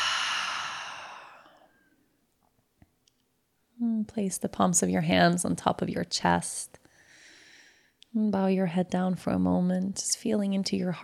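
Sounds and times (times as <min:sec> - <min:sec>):
deep breath exhaled slowly through the mouth: 0:00.0 - 0:01.7
faint small clicks: 0:02.8 - 0:03.3
speech: 0:04.0 - 0:06.8, 0:08.1 - 0:11.0.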